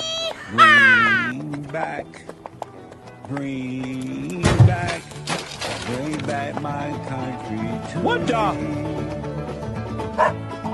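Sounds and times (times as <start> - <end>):
speech: 0.5 - 2.5, 3.3 - 9.3
steady musical backing: 0.8 - 10.7
dog barking: 10.2 - 10.7.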